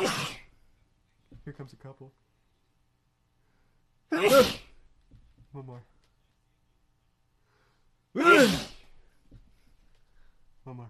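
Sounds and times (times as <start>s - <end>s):
person sneezing: 0.0s - 0.6s, 4.1s - 4.8s, 8.2s - 9.0s
speech: 1.5s - 2.3s, 4.1s - 4.6s, 5.5s - 6.0s, 10.6s - 10.8s.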